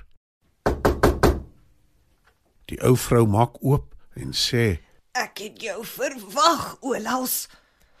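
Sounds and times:
man knocking on the wooden door of a small house: 0.6s - 1.6s
speech: 2.7s - 7.6s.

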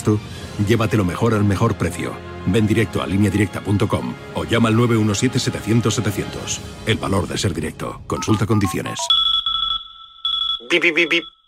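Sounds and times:
speech: 0.0s - 9.2s, 10.7s - 11.4s
electronic alarm clock beeping: 8.2s - 11.4s
person imitating the beeping: 10.5s - 11.4s.

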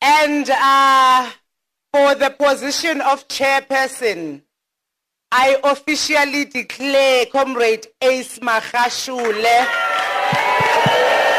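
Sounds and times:
speech: 0.3s - 1.4s, 2.0s - 4.4s, 5.3s - 11.0s
large crowd of conference delegates applauding and cheering: 9.2s - 11.3s.

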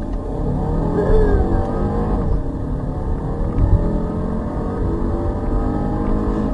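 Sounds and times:
2-litre turbo petrol car engine revving: 0.0s - 6.5s
speech: 1.0s - 1.7s.

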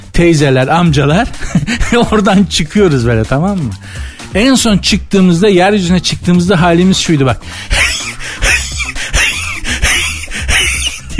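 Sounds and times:
speech: 0.2s - 8.4s
person imitating heavy panting: 7.4s - 11.1s
laughter: 7.7s - 11.1s.

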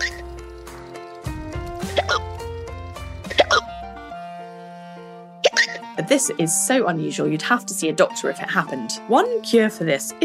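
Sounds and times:
sustained musical tone: 0.0s - 9.9s
hiccups: 5.4s - 5.8s
speech: 6.0s - 10.2s.

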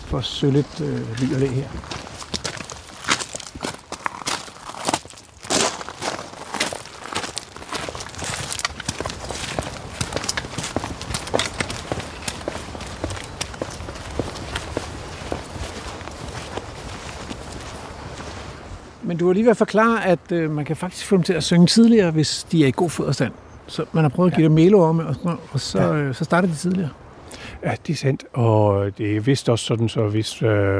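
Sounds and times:
speech: 0.1s - 2.1s, 19.2s - 30.7s
footsteps of people walking into a back garden: 0.2s - 18.8s
light scuffs and rustles: 0.4s - 18.8s.

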